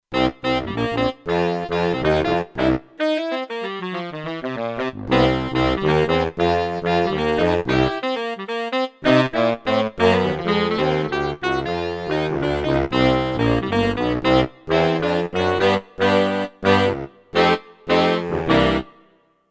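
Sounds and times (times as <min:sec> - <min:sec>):
synthesizer saxophone section: 0:00.1 - 0:19.3.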